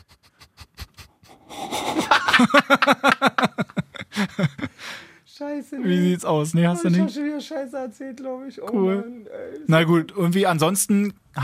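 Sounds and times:
person breathing heavily: 0:00.0 - 0:02.3, 0:04.0 - 0:05.3
laughter: 0:00.8 - 0:04.8
speech: 0:02.4 - 0:03.7, 0:05.6 - 0:11.4.

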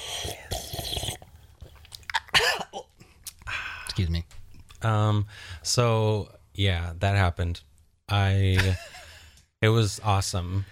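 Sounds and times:
person sipping and slurping tea: 0:00.0 - 0:02.0
swallows and gulp: 0:00.0 - 0:03.5
speech: 0:04.8 - 0:08.9, 0:09.6 - 0:10.7.

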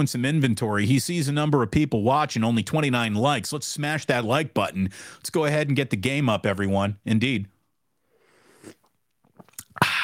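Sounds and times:
speech: 0:00.0 - 0:07.5
loud breathy exhale of satisfaction: 0:08.0 - 0:08.8, 0:09.8 - 0:10.0
person slurping a drink: 0:08.2 - 0:10.0
wet mouth clicks: 0:08.5 - 0:10.0.

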